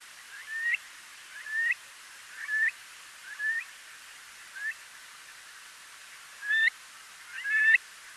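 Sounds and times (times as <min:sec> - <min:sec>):
Burhinus oedicnemus stone curlew call on breeding ground: 0:00.3 - 0:01.8, 0:02.4 - 0:03.7, 0:06.4 - 0:06.7, 0:07.3 - 0:07.8.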